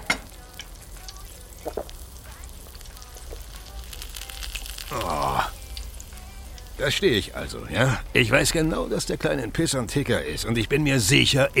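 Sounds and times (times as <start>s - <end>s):
food frying on a hot griddle in a snack bar: 0.0s - 11.5s
murmured voices in a snack bar: 4.9s - 5.7s, 6.7s - 10.9s
speech: 6.8s - 11.5s.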